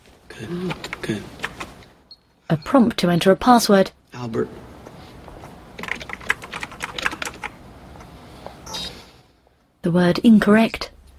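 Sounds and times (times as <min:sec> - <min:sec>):
speech: 0:00.4 - 0:01.4, 0:02.5 - 0:04.6, 0:09.9 - 0:10.9
librarian typing on a computer keyboard running a search: 0:00.6 - 0:01.8, 0:05.8 - 0:07.6.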